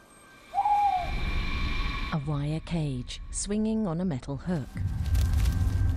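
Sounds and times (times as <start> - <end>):
male owl hooting: 0.4 - 2.3
speech: 2.1 - 5.2.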